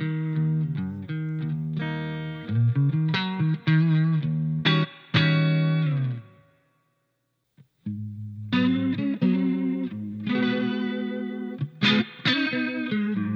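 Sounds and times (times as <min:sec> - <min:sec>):
clean electric guitar with light reverb playing strummed chords and picked notes: 0:00.0 - 0:06.6, 0:07.8 - 0:13.3.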